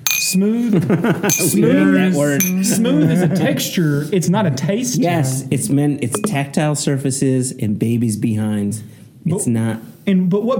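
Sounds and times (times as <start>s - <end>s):
glasses clinking in a toast: 0.0s - 0.4s, 1.3s - 1.8s, 2.4s - 2.8s, 6.2s - 6.4s
speech: 0.3s - 10.5s.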